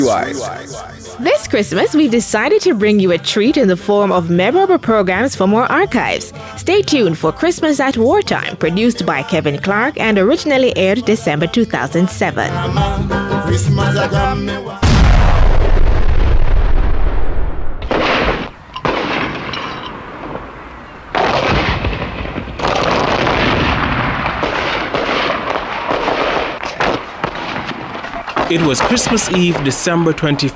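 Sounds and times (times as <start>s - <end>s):
speech: 0.1s - 14.8s, 28.5s - 30.5s
heavy artillery fire from both sides of a 1914 battle: 14.8s - 30.5s.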